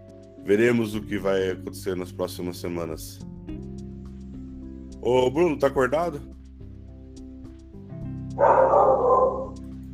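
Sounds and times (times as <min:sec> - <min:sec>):
speech: 0:00.4 - 0:03.3, 0:05.0 - 0:06.3
dog barking in a house: 0:08.4 - 0:09.7.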